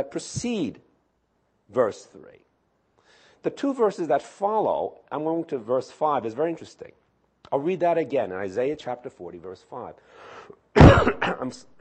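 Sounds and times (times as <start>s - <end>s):
speech: 0.0s - 0.8s, 1.7s - 2.5s, 3.4s - 11.7s
person coughing from a cold: 10.8s - 11.7s.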